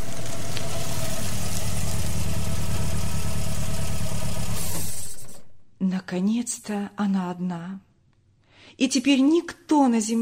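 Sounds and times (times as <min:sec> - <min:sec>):
car engine idling: 0:00.0 - 0:05.6
speech: 0:06.1 - 0:07.9, 0:08.7 - 0:10.2.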